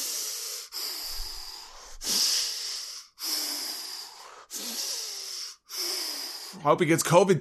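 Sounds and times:
heavy rough hissing breathing: 0.0s - 6.7s
speech: 6.6s - 7.3s.

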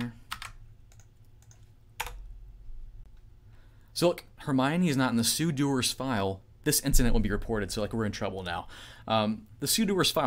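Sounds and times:
faint low hum: 0.0s - 10.2s
typing a password on a computer keyboard: 0.3s - 2.3s
speech: 4.0s - 10.2s.

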